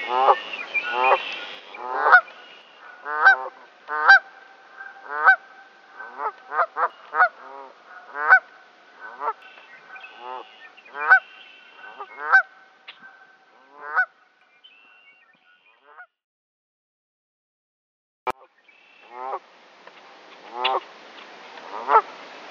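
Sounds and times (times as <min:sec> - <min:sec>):
Canada goose honking: 0:00.0 - 0:02.3, 0:03.0 - 0:05.4, 0:06.0 - 0:08.4, 0:09.0 - 0:09.5, 0:10.1 - 0:14.1.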